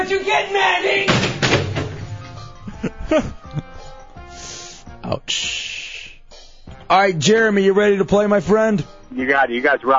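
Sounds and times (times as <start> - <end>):
speech: 0.0 - 1.3, 2.8 - 3.7, 5.0 - 5.7, 6.9 - 9.9
thrown chair landing with a heavy thud and clatter: 1.1 - 2.4
knocks and thumps: 1.1 - 2.5.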